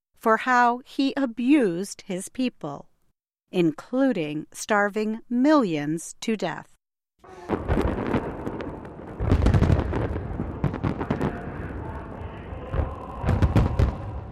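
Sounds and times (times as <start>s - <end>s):
speech: 0.2s - 2.9s, 3.5s - 7.9s
sharp crackling fireworks bursts: 7.2s - 14.1s
large fireworks display exploding: 7.3s - 14.3s
deep fireworks booms: 7.4s - 12.0s, 12.7s - 14.3s.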